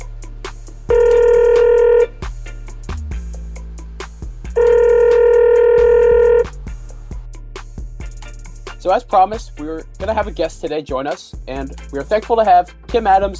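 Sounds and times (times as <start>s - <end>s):
short uneven phone dialing tones: 0.9s - 2.1s, 4.6s - 6.5s
speech: 8.9s - 13.3s.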